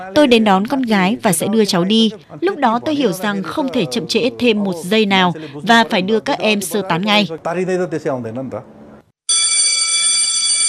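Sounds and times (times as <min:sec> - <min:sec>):
speech: 0:00.0 - 0:08.8
school bell ringing: 0:09.3 - 0:10.6.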